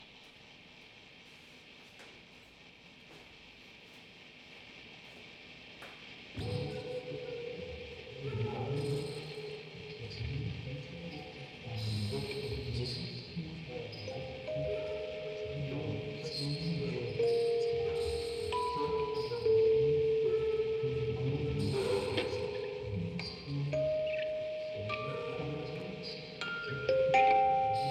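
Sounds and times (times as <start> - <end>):
field recording ambience: 0.0 - 27.8
tape playback: 0.0 - 27.8
vocoder: 5.8 - 27.8
quartet of music boxes playing: 14.1 - 27.8.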